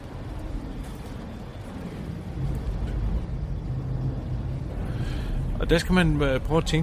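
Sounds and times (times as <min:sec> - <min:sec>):
long low rolling thunder rumble: 0:00.0 - 0:06.8
speech: 0:05.6 - 0:06.8.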